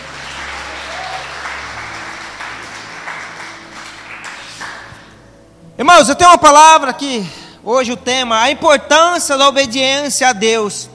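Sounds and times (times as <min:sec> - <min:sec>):
audience applauding: 0:00.0 - 0:05.2
speech: 0:05.9 - 0:10.9.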